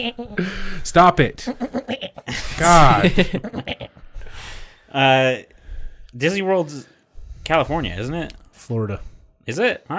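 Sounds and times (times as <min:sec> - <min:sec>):
speech: 0:00.0 - 0:03.8, 0:04.9 - 0:05.5, 0:06.1 - 0:06.9, 0:07.5 - 0:09.9
person's quick breathy inhale: 0:00.4 - 0:00.8, 0:04.2 - 0:04.9, 0:05.5 - 0:06.2, 0:06.9 - 0:07.5
laughter: 0:01.5 - 0:04.1.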